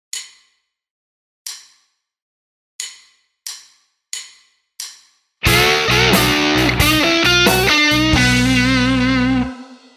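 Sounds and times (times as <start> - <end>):
guitar: 5.4 - 9.9.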